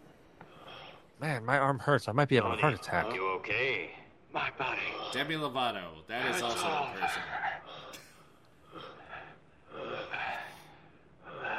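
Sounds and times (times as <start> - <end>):
speech: 1.2 - 7.5
person breathing heavily with rough wheezy breaths: 7.1 - 11.5.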